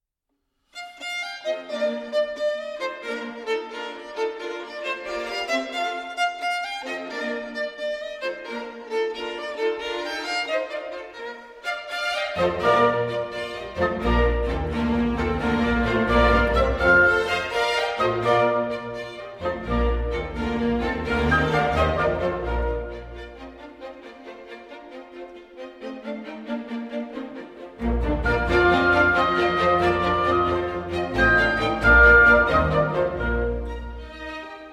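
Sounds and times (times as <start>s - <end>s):
classical rondo for violin and orchestra: 0.8s - 34.7s.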